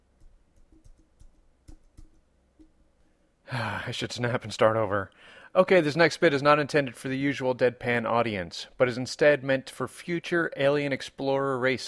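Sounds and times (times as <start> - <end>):
computer keyboard clicking: 0.2 - 2.7
speech: 3.5 - 11.8.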